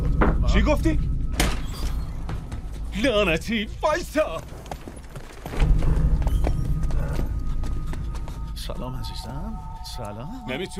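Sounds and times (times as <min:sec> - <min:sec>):
low rumbling background: 0:00.0 - 0:10.7
speech: 0:00.5 - 0:01.1, 0:03.0 - 0:04.6, 0:08.7 - 0:10.7
cow hooves clopping on a hard street: 0:02.2 - 0:09.1.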